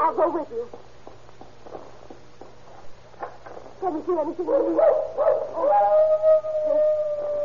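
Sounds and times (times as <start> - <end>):
low hum: 0.0 - 7.4
speech: 0.1 - 1.0, 3.8 - 6.2
soft footsteps walking along a path: 0.6 - 3.9
dog howling on a back porch: 4.5 - 7.4.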